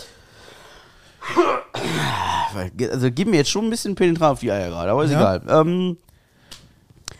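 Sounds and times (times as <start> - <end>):
person coughing in raspy bursts: 1.2 - 2.6
speech: 2.6 - 6.1.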